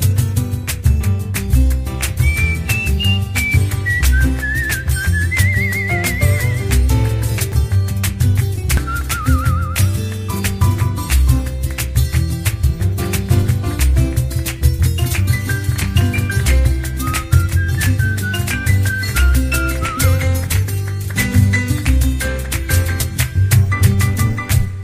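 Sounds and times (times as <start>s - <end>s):
full instrumental music backing: 0.0s - 24.8s
whistled melody with light vibrato: 2.0s - 7.4s, 8.8s - 11.2s, 15.2s - 20.8s.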